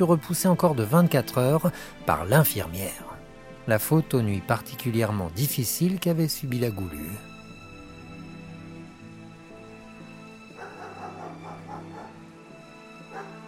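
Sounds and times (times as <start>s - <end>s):
speech: 0.0s - 3.1s, 3.7s - 7.3s
two dogs under a caravan barking and whimpering in greeting: 10.5s - 12.3s, 13.1s - 13.4s.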